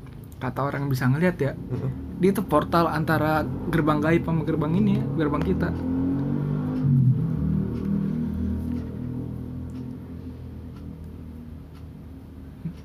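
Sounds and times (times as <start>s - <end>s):
speech: 0.4s - 5.9s
motorcycle engine revving and idling: 1.6s - 11.7s.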